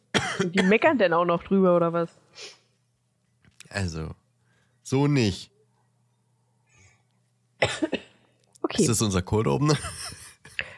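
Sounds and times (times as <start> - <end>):
harsh coughs into the microphone: 0.1 - 0.8, 7.6 - 8.3
speech: 0.4 - 2.6, 3.7 - 4.2, 4.9 - 5.5, 7.6 - 8.0, 8.6 - 10.2.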